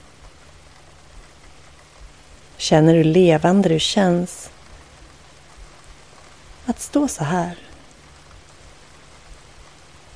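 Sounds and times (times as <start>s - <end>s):
steady soft rain falling: 0.0s - 10.1s
speech: 2.6s - 4.6s, 6.7s - 7.7s.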